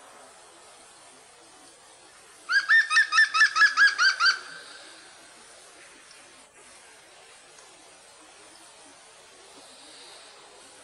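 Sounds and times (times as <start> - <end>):
European green woodpecker call of ringing notes: 2.5 - 4.8.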